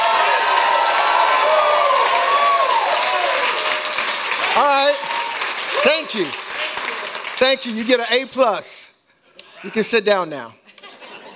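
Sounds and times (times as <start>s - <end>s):
crowd cheering and whooping: 0.0s - 7.1s
large audience clapping: 0.0s - 8.7s
speech: 5.9s - 6.5s, 7.4s - 8.7s, 9.6s - 10.6s
laughter: 10.6s - 11.3s.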